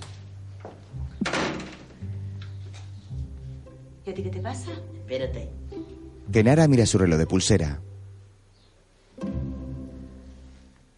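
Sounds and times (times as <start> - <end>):
steady low electrical hum: 0.0 - 10.9
door being closed inside a house: 1.2 - 2.0
speech: 4.1 - 5.7, 6.3 - 7.9.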